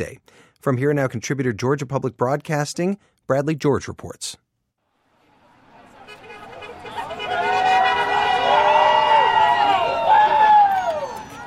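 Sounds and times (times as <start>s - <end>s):
speech: 0.0s - 4.4s
small crowd cheering and whooping outdoors at a street rally: 6.2s - 11.4s.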